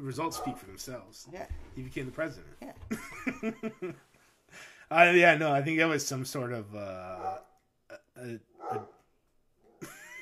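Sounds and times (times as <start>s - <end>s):
speech: 0.0s - 9.0s
dog barking: 0.2s - 0.7s, 7.2s - 7.6s, 8.6s - 9.0s
laughter: 2.9s - 4.1s, 9.8s - 10.2s
dog yelping: 7.2s - 7.5s, 8.6s - 9.0s.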